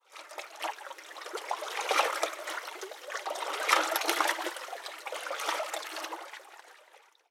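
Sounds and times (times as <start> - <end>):
canal water by a bridge: 0.0 - 7.2.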